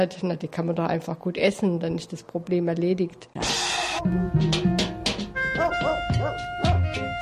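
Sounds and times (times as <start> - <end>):
speech: 0.0 - 4.8
crowd of dogs barking and yelping: 3.7 - 7.1.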